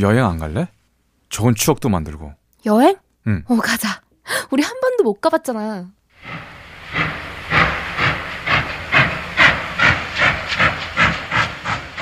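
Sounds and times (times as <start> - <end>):
speech: 0.0 - 7.1
steam train pulling away with hissing chuffs: 6.2 - 12.0.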